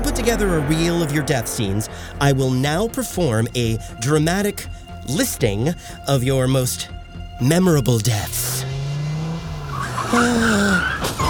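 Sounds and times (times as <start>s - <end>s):
speech: 0.2s - 8.7s, 10.1s - 11.2s
car engine roaring: 7.8s - 11.2s
car tires screeching: 8.1s - 11.2s
car crash crunching impact: 10.9s - 11.2s.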